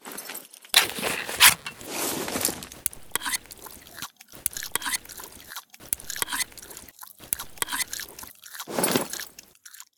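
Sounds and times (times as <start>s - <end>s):
food can being used: 0.8s - 1.9s, 2.8s - 8.2s.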